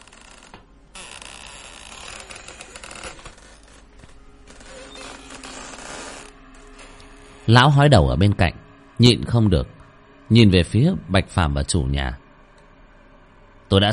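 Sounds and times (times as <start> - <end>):
old door creaking open in a worn room: 0.0 - 7.4
speech: 7.5 - 12.2, 13.7 - 13.9.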